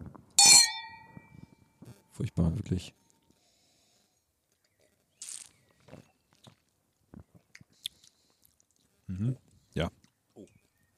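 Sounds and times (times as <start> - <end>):
wine glasses clinking in a toast: 0.4 - 1.2
speech: 2.2 - 3.0.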